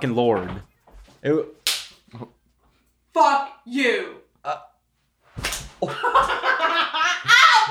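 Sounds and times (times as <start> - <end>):
speech: 0.0 - 2.4, 3.2 - 4.7, 5.8 - 7.6
hand slapping a woman: 1.6 - 2.0, 5.4 - 6.3
laughter: 5.8 - 7.6
excited voices: 7.0 - 7.6.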